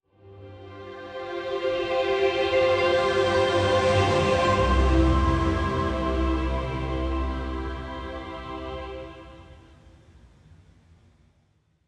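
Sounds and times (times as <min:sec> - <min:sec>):
music in C major at 108 bpm: 0:00.2 - 0:09.6.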